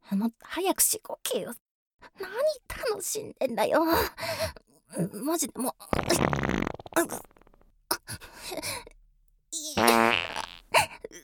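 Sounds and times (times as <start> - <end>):
speech: 0.1 - 7.4
fart: 5.9 - 7.7, 9.8 - 10.6.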